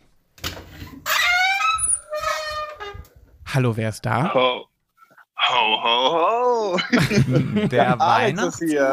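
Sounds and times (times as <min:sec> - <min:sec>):
door creaking open with a long wavering squeak: 0:00.4 - 0:03.2
speech: 0:03.6 - 0:04.7, 0:05.5 - 0:08.9
laughter: 0:06.8 - 0:08.9.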